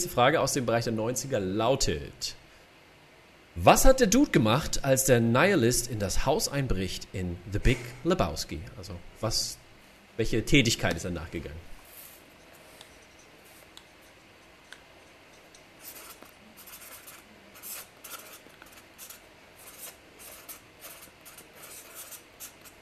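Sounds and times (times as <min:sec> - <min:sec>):
speech: 0:00.0 - 0:02.4, 0:03.6 - 0:09.6, 0:10.2 - 0:11.7
pen scratching on paper as someone writes during a quiz: 0:15.8 - 0:22.8.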